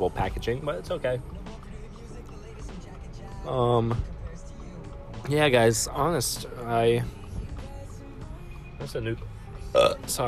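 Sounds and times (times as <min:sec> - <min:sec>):
speech: 0:00.0 - 0:01.6, 0:03.4 - 0:04.1, 0:05.3 - 0:07.2, 0:08.8 - 0:10.2
loud burp: 0:09.7 - 0:10.1.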